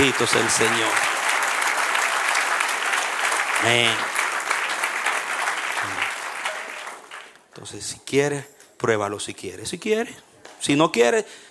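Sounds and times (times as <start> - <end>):
speech: 0.0 - 1.2, 3.6 - 4.1, 7.6 - 11.5
crowd applauding at a religious service: 0.0 - 7.4.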